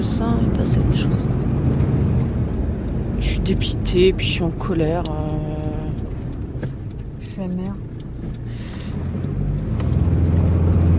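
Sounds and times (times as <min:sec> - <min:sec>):
car engine droning as the vehicle drives along: 0:00.0 - 0:10.9
speech: 0:00.1 - 0:01.7, 0:03.2 - 0:05.6, 0:07.4 - 0:07.9.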